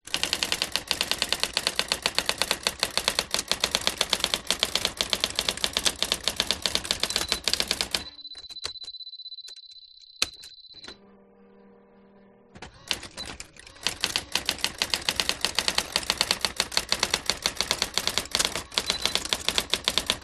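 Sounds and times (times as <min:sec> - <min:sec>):
Brother AX 450 electronic typewriter typing fast in an office: 0:00.1 - 0:11.0, 0:12.6 - 0:20.2.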